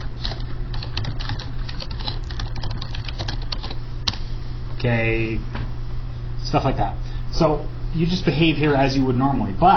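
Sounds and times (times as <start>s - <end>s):
typing on a computer keyboard: 0.2s - 3.8s
speech: 4.8s - 5.6s, 6.5s - 9.7s.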